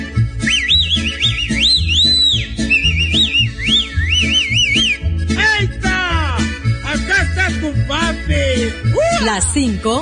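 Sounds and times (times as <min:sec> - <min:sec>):
low rhythmic backing beat: 0:00.0 - 0:10.0
person whistling a wavering looping call: 0:00.4 - 0:05.2
speech: 0:09.2 - 0:10.0.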